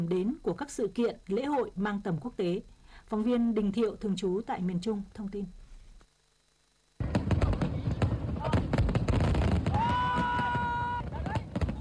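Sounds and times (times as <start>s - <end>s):
speech: 0.0s - 5.6s
fireworks bangs and crackles: 7.0s - 11.8s
steady crowd roar: 9.6s - 11.8s.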